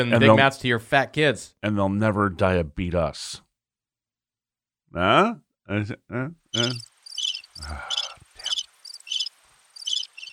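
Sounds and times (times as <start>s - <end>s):
speech: 0.0s - 3.4s, 4.9s - 6.9s, 7.6s - 8.0s
crickets chirping: 6.6s - 10.3s.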